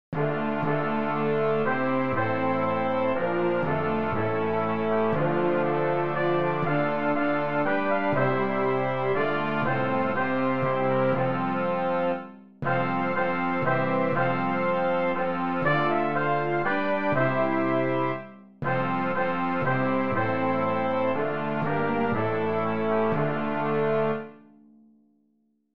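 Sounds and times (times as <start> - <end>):
brass playing a hymn: 0.1 - 24.4.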